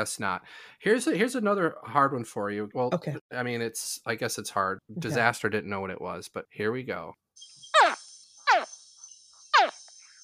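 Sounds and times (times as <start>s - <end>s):
speech: 0.0s - 7.2s
young crocodile chirping calls: 7.7s - 10.2s.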